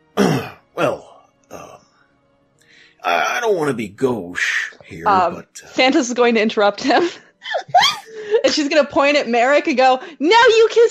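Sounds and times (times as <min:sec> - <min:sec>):
rough gravelly throat clearing: 0:00.2 - 0:00.6
speech: 0:03.5 - 0:07.2, 0:08.5 - 0:10.8
laughter: 0:06.9 - 0:08.7.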